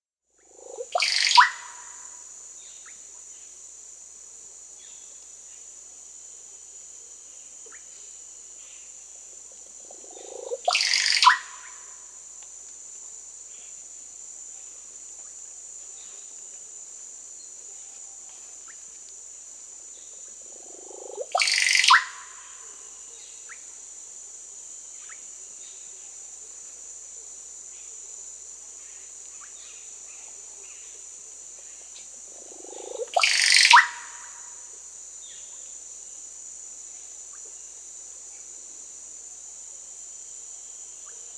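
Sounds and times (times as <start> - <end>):
Russet-backed Oropendola Psarocolius angustifrons calling in Peru: 0.5 - 1.9, 9.9 - 11.9, 20.5 - 22.6, 32.4 - 34.4.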